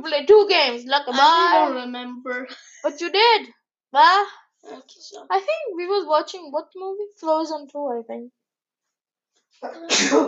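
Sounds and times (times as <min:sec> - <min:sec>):
speech: 0:00.0 - 0:08.4, 0:09.6 - 0:10.2
older brother sneezing: 0:09.7 - 0:10.2.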